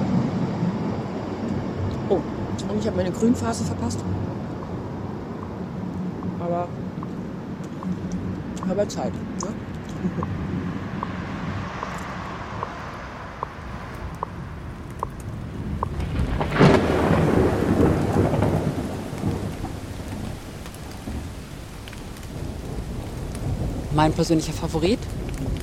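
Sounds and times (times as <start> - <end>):
steady rain falling in a forest at night: 0.0 - 25.6
thunder rumbling: 0.0 - 25.6
speech: 2.1 - 4.3, 8.7 - 10.6, 24.0 - 25.2
rain drips tapping: 13.4 - 16.0.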